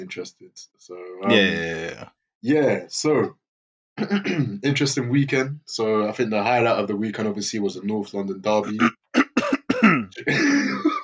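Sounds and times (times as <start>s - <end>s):
speech: 0.0s - 3.4s, 4.0s - 9.2s, 10.1s - 10.9s
person loudly clearing throat with hacking rattle: 1.2s - 2.0s, 4.0s - 4.6s, 8.6s - 10.3s.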